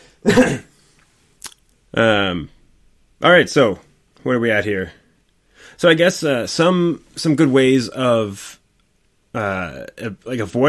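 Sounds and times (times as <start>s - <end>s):
speech: 0.2s - 0.7s, 3.2s - 5.0s, 5.7s - 8.6s, 9.3s - 10.6s
throat clearing: 0.2s - 0.7s
person with COVID coughing harshly: 0.2s - 0.8s.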